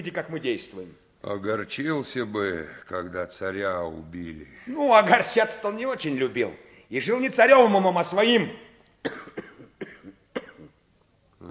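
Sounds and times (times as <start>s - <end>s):
speech: 0.0s - 9.4s
man coughing: 9.0s - 10.8s.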